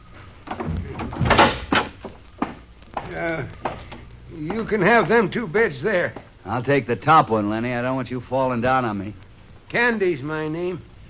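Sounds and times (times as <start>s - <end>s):
wooden bunkhouse door hinges creaking open: 0.4s - 5.2s
wooden bunkhouse door clunks and rattles while handled: 0.5s - 2.6s
speech: 3.1s - 10.9s.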